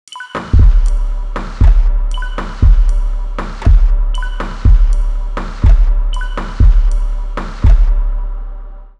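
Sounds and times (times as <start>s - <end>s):
drum: 0.1s - 8.2s.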